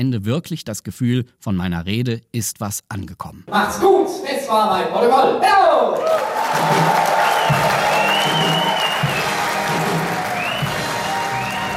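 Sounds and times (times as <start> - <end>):
speech: 0.0 - 7.8
audience cheers and whistles: 6.0 - 11.7
large indoor audience applauding: 6.0 - 11.7.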